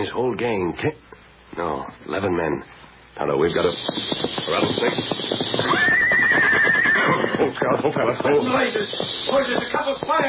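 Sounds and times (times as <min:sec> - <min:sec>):
speech: 0:00.0 - 0:10.2
horse whinnying: 0:05.5 - 0:07.6.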